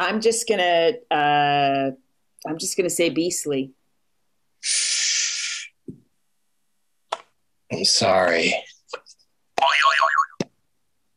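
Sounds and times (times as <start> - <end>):
speech: 0.0 - 3.8, 4.6 - 4.9, 7.7 - 8.7
springy cartoon boing sound effect: 9.6 - 10.4.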